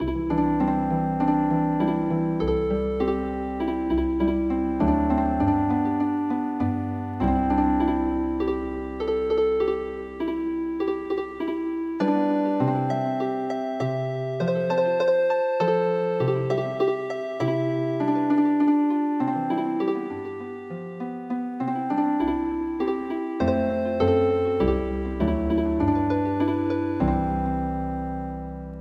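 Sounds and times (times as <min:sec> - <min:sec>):
healing harp music: 0:00.0 - 0:28.7.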